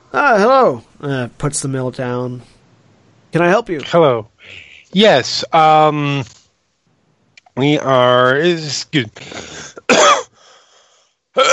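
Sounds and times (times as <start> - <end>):
speech: 0.1 - 2.6, 3.3 - 6.4, 7.6 - 10.0, 11.4 - 11.5
person faking a cough for a dying character: 9.2 - 10.4, 11.4 - 11.5.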